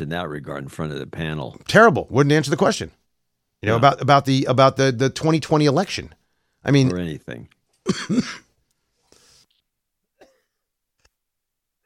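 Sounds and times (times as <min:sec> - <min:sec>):
speech: 0:00.0 - 0:03.0, 0:03.6 - 0:08.4
person coughing: 0:07.9 - 0:08.5.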